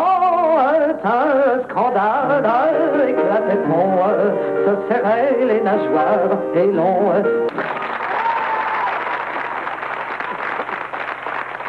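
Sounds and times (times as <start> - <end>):
speech: 1.0 - 7.8
studio audience applauding: 7.5 - 11.6.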